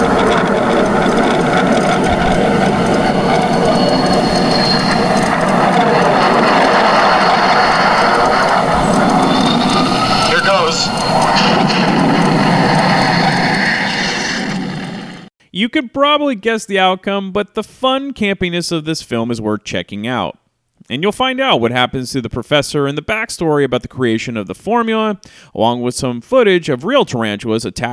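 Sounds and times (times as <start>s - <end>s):
fighter jet engines roaring in a film scene: 0.0s - 15.3s
voices: 5.2s - 11.8s
speech: 15.6s - 27.9s.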